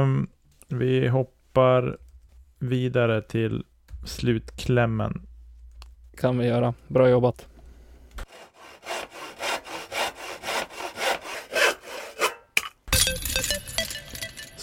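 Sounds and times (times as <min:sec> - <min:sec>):
speech: 0:00.0 - 0:02.0, 0:02.6 - 0:05.3, 0:06.2 - 0:07.5
hand saw sawing wood: 0:08.2 - 0:12.5.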